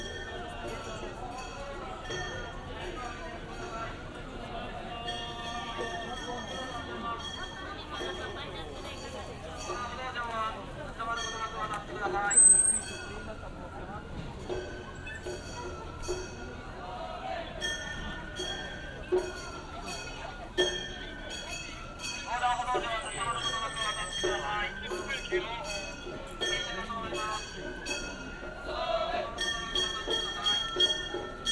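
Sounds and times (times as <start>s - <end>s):
crowd talking on a city street at a festival float procession: 0.0s - 31.5s
thin high piping tones: 12.3s - 13.1s
bright metallic clinks: 12.3s - 13.2s.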